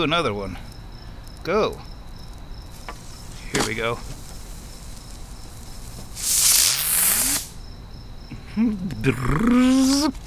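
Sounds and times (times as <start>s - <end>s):
speech: 0.0s - 0.7s, 1.4s - 1.9s, 3.6s - 4.2s, 8.6s - 10.2s
breathy hiss with a rising tone: 4.3s - 7.6s.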